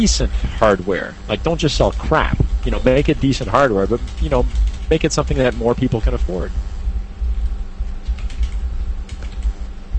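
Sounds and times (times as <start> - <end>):
speech: 0.0 - 6.7
low hum: 0.0 - 9.9
computer keyboard typing: 3.6 - 6.3, 8.0 - 9.6.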